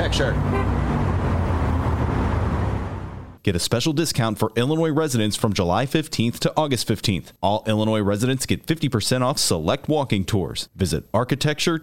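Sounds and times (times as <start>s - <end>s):
road noise of city traffic: 0.0s - 3.4s
tour bus engine rumbling in city traffic: 0.0s - 3.4s
speech: 0.1s - 0.8s, 3.4s - 11.8s.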